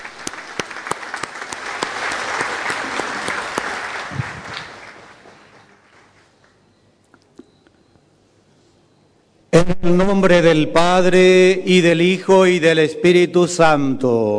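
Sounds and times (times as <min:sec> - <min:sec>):
audience applauding loudly in church: 0:00.0 - 0:06.6
speech: 0:09.6 - 0:14.3.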